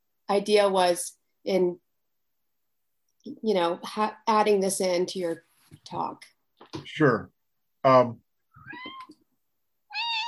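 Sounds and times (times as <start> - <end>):
speech: 0.3 - 1.8, 3.2 - 9.0
cat meowing: 8.6 - 9.2, 9.9 - 10.2.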